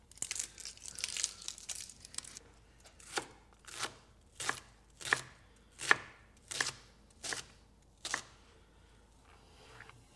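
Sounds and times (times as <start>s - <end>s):
knife dicing a shallot on a cutting board: 3.0s - 8.4s.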